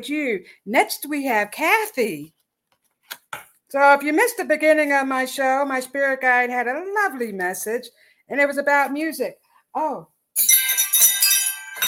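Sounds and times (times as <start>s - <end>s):
speech: 0.0s - 2.4s, 3.1s - 10.7s
wind chimes ringing: 10.4s - 11.8s.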